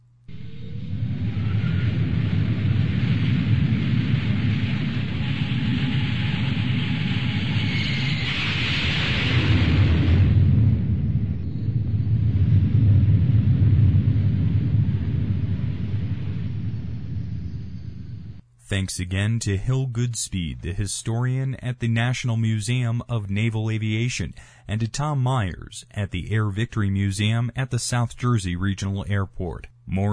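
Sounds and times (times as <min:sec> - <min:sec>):
F-14 fighter jet afterburner roaring through a takeoff: 0:00.3 - 0:18.4
speech: 0:18.7 - 0:30.1.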